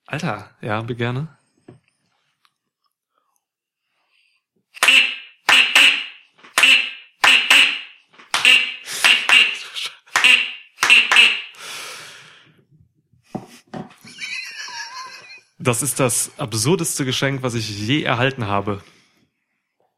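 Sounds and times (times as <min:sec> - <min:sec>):
speech: 0:00.1 - 0:01.4, 0:15.6 - 0:19.0
souvenir duck call toy quacking: 0:04.8 - 0:11.6
laughter: 0:14.0 - 0:15.6.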